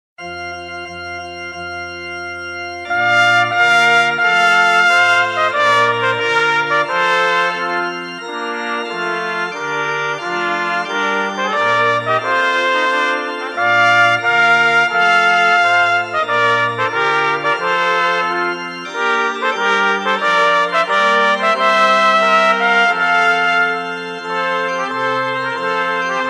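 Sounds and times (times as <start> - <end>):
trumpets playing a tune: 0.3 - 26.2.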